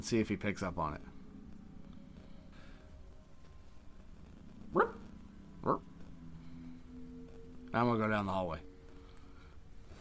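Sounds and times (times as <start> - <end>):
speech: 0.0 - 1.2, 5.6 - 5.9, 7.7 - 8.7
puppy barking: 4.7 - 5.0.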